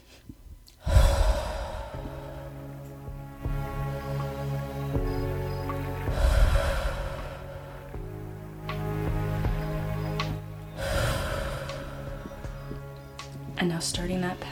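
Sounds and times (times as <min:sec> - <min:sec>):
deep breaths with long slow airy inhales and exhales: 0:00.0 - 0:03.0, 0:06.0 - 0:08.2, 0:10.7 - 0:13.2
soft sustained music bed: 0:00.0 - 0:14.5
speech: 0:13.6 - 0:14.5.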